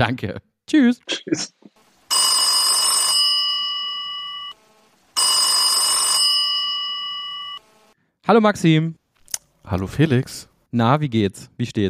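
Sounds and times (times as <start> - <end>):
speech: 0.0 - 2.2, 8.2 - 9.0, 9.6 - 11.8
telephone ringing as an outgoing call is placed: 2.1 - 7.9.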